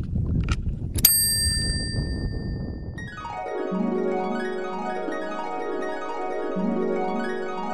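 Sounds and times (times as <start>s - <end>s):
rumbling wind noise during a walk in a ravine: 0.0s - 3.4s
bright bicycle bell ding: 1.0s - 2.9s
long sustained pulsing ringing tone: 1.0s - 7.6s.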